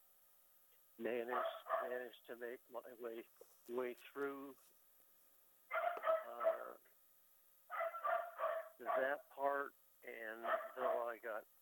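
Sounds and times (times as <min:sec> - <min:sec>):
speech: 0:01.0 - 0:04.8, 0:08.8 - 0:11.6
dog barking and whining: 0:01.2 - 0:02.0, 0:05.7 - 0:06.8, 0:07.7 - 0:09.2, 0:10.4 - 0:11.2.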